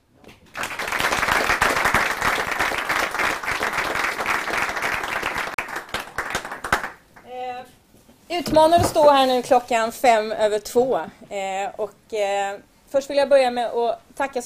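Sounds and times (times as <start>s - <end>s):
room full of people applauding: 0.5s - 7.0s
speech: 8.4s - 14.4s.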